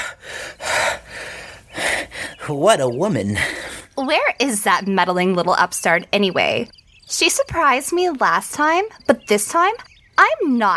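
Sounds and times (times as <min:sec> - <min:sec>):
ragged heavy gasps for breath: 0:00.0 - 0:02.5, 0:03.4 - 0:04.0
speech: 0:02.5 - 0:10.7.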